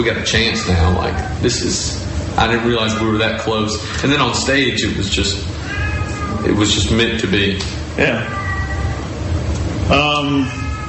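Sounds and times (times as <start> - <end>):
speech: 0.0 - 5.6, 6.3 - 8.4, 9.9 - 10.6
low hum: 0.0 - 10.8
cat meowing outside: 0.4 - 1.4, 5.6 - 6.6, 8.2 - 9.1, 10.4 - 10.8.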